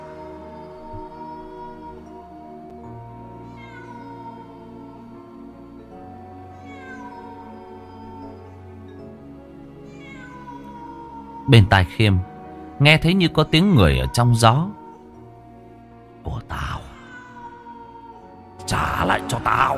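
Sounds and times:
cat yowling and meowing near a cemetery: 0.0s - 2.6s, 3.3s - 5.2s, 5.9s - 8.8s, 9.8s - 12.3s, 13.4s - 15.3s, 16.5s - 19.7s
speech: 11.5s - 14.8s, 19.1s - 19.7s.

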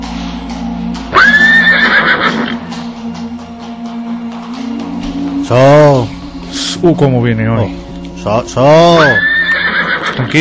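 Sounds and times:
horse neighing: 1.1s - 2.6s, 9.0s - 10.3s
speech: 5.5s - 6.2s, 6.8s - 9.3s, 10.2s - 10.3s.

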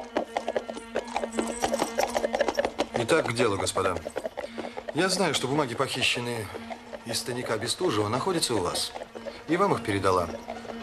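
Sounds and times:
horse hooves clip-clopping as a horse-drawn carriage sets off: 0.0s - 10.8s
speech: 3.0s - 4.3s, 4.9s - 10.6s.

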